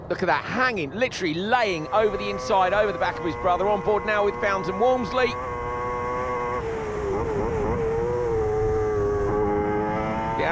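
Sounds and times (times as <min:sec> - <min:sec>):
speech: 0:00.1 - 0:05.6
racing sidecar 600cc engine revving high: 0:01.6 - 0:10.5.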